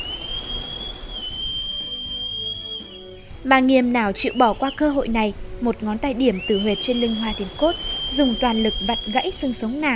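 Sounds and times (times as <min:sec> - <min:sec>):
whistle blown hard with full force: 0:00.0 - 0:03.5, 0:04.2 - 0:05.1, 0:06.3 - 0:09.8
speech: 0:03.4 - 0:09.9.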